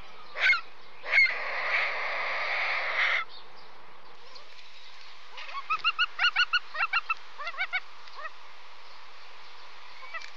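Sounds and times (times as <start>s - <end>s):
water bird harsh calls: 0.3s - 3.3s, 5.3s - 8.4s.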